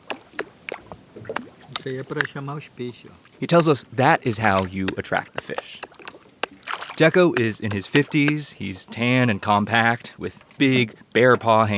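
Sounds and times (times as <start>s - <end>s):
fingers flicking the water surface: 0.0s - 2.6s, 3.2s - 9.0s
steady high insect-like whine: 0.0s - 11.7s
speech: 1.8s - 5.9s, 7.0s - 11.7s.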